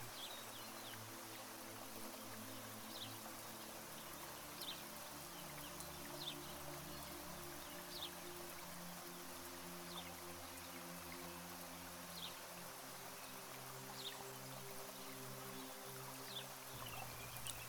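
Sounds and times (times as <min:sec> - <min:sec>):
gentle rain falling outside: 0:00.0 - 0:17.6
courtyard birds chirping such as sparrows, swifts and doves: 0:16.8 - 0:17.6.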